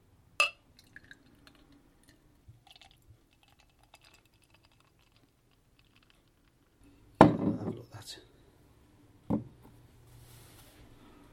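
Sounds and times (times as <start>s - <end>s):
dark beer pouring into a Guinness glass: 0.4s - 6.8s
small drips: 0.7s - 6.8s.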